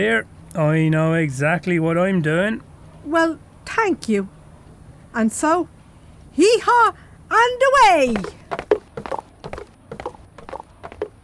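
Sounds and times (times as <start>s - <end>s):
speech: 0.0s - 4.4s, 5.2s - 5.7s, 6.4s - 8.7s
animal hooves galloping away: 8.0s - 11.2s.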